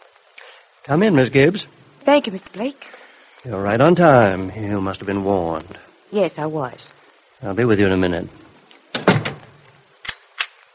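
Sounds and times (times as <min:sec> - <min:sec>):
speech: 0:00.8 - 0:08.4
handling thud at a door: 0:09.0 - 0:09.5.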